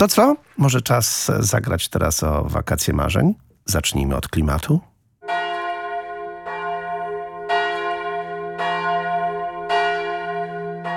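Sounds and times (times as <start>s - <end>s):
speech: 0.0s - 4.9s
church bells ringing: 5.2s - 10.9s.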